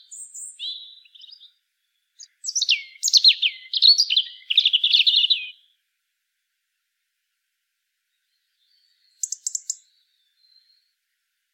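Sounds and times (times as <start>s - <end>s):
European robin Erithacus rubecula singing: 0.0s - 5.9s, 8.0s - 11.5s.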